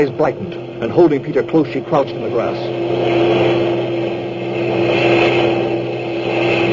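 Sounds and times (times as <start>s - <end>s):
speech: 0.0s - 3.2s
engine roar from heavy military convoy trucks passing: 0.0s - 6.7s.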